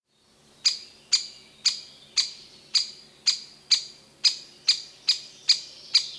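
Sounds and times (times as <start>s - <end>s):
great spotted woodpecker giving sharp kik calls: 0.6s - 6.1s.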